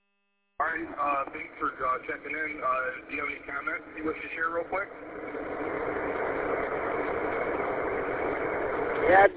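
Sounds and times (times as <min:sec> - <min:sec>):
car engine idling: 0:00.6 - 0:09.3
speech: 0:00.8 - 0:05.6, 0:09.1 - 0:09.3.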